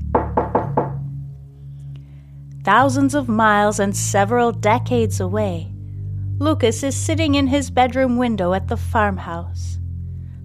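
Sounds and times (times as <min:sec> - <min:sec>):
firm knocks on a door downstairs: 0:00.0 - 0:01.2
low steady hum: 0:00.8 - 0:10.4
speech: 0:02.7 - 0:05.7, 0:06.4 - 0:09.8.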